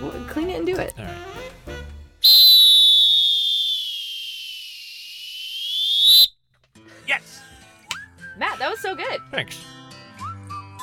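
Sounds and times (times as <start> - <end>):
speech: 0.0 - 1.3, 9.3 - 9.7
lifeguard whistle blast: 2.2 - 6.3.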